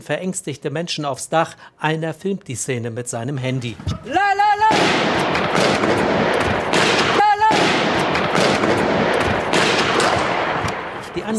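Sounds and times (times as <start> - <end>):
speech: 0.0 - 4.8
gunfire from heavily armed attackers storming a newsroom in Paris: 4.6 - 11.3.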